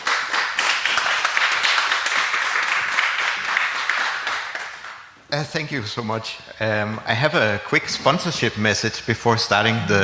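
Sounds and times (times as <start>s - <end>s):
crowd applauding: 0.0s - 5.1s
speech: 5.3s - 10.0s.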